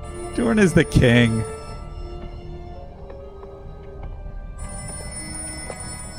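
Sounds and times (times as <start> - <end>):
old-fashioned telephone bell ringing: 0.0 - 2.2, 4.6 - 6.1
speech: 0.4 - 1.6.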